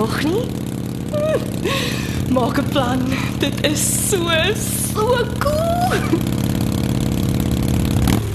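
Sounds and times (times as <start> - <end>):
Harley motorcycle engine rumbling during a ride: 0.0 - 8.3
speech: 0.1 - 6.6.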